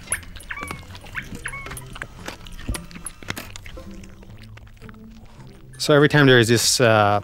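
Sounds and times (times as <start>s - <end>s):
dog whimpering and yipping: 0.0s - 2.2s
speech: 5.8s - 7.2s.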